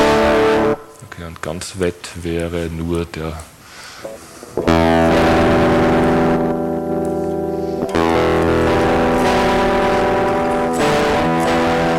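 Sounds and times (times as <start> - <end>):
electric guitar through a distortion plugin playing sustained chords: 0.0 - 1.0, 4.1 - 11.9
speech: 1.2 - 5.7.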